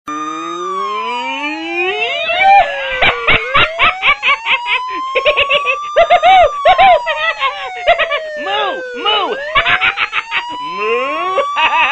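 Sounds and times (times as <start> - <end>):
man laughing loudly: 1.9 - 11.9.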